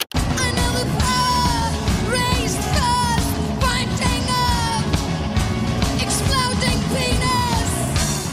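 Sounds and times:
distorted guitars at a live punk concert: 0:00.0 - 0:08.3
female punk singer yelling and shouting: 0:00.4 - 0:04.9, 0:06.0 - 0:08.0.

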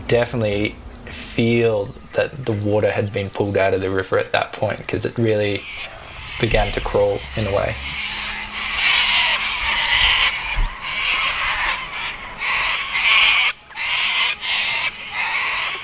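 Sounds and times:
speech: 0:00.1 - 0:08.0
cockatoos screeching on the Murray River in Australia: 0:05.2 - 0:15.8.

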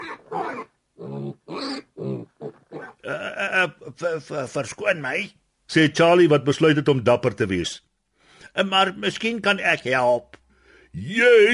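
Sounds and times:
pig grunting and oinking while trotting toward a farmer at sunrise: 0:00.0 - 0:03.4
speech: 0:04.0 - 0:07.9, 0:08.5 - 0:11.5.

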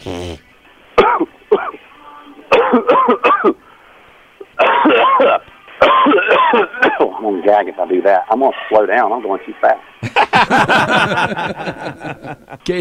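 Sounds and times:
person in a harsh coughing fit: 0:01.0 - 0:01.8, 0:02.5 - 0:03.6, 0:04.6 - 0:07.1
speech: 0:07.5 - 0:12.7
laughter: 0:10.0 - 0:12.7.

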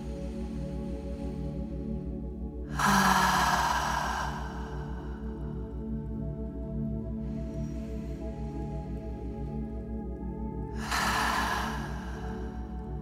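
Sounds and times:
soft steady droning music bed: 0:00.0 - 0:13.0
deep breaths inhaled through the nose and exhaled through the mouth during meditation: 0:02.7 - 0:06.1, 0:10.7 - 0:13.0.

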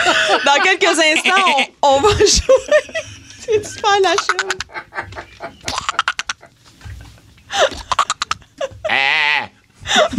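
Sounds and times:
laughter: 0:00.0 - 0:09.0, 0:09.9 - 0:10.1
speech: 0:00.5 - 0:06.0, 0:08.9 - 0:10.1
sharp rustling and clattering bursts: 0:01.9 - 0:08.9
goat bleating: 0:08.9 - 0:09.6.

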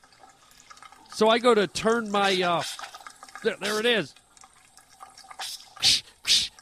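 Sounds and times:
gurgling spurts from a sink faucet: 0:00.0 - 0:06.5
sink faucet sputtering from air in water pipes: 0:00.0 - 0:06.5
speech: 0:01.2 - 0:02.8, 0:03.4 - 0:04.2
hissing bursts of spray from a sink faucet: 0:02.2 - 0:03.0, 0:03.6 - 0:04.0, 0:05.4 - 0:06.5.

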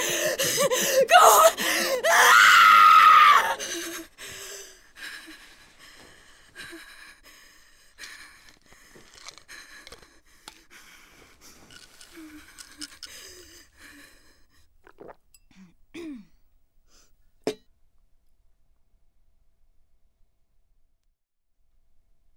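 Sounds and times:
person screaming: 0:00.7 - 0:03.6.

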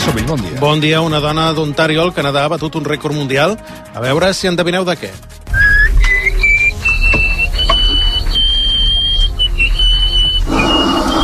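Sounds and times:
speech: 0:00.1 - 0:05.3
high whistle blown through the nose playing a short tune: 0:05.5 - 0:11.2.

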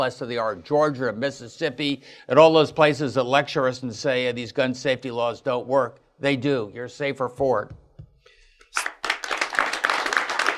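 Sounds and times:
speech: 0:00.0 - 0:07.8, 0:08.7 - 0:08.9
audience clapping: 0:08.7 - 0:10.5.

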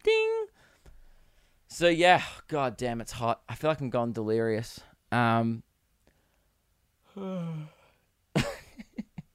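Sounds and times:
speech: 0:01.8 - 0:05.7, 0:07.2 - 0:07.8
person giving a voiced half yawn: 0:07.1 - 0:08.0.

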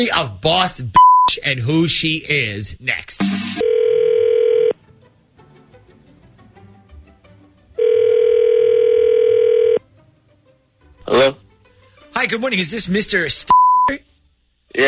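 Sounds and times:
speech: 0:00.0 - 0:03.7, 0:11.1 - 0:11.4, 0:12.2 - 0:14.1
telephone ringback tone: 0:03.6 - 0:04.8, 0:07.8 - 0:09.8.

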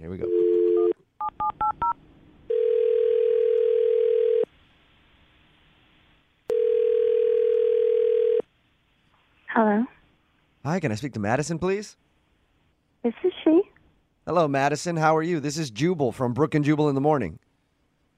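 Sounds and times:
speech: 0:00.0 - 0:00.3, 0:10.8 - 0:12.0, 0:13.0 - 0:13.7, 0:14.3 - 0:17.4
long steady telephone ringback tones: 0:00.3 - 0:04.5, 0:06.5 - 0:08.4.

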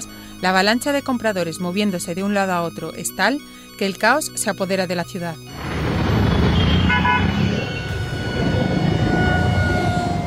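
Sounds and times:
speech: 0:00.4 - 0:05.7
car horns blaring in a city traffic jam: 0:05.5 - 0:10.2
dense steady traffic rumble in a city traffic jam: 0:05.5 - 0:10.2.

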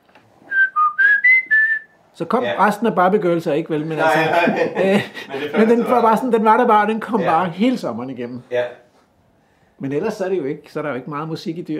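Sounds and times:
person whistling imitating a blackbird's song: 0:00.5 - 0:01.9
speech: 0:02.2 - 0:08.8, 0:09.8 - 0:11.7
laughter: 0:03.9 - 0:06.1.

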